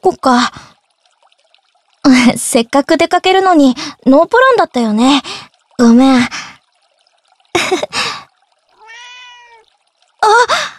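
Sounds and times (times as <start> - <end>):
speech: 0.0 - 0.6, 2.0 - 6.5, 7.7 - 8.0
person's voice: 2.1 - 6.4
cat meowing: 8.8 - 9.6.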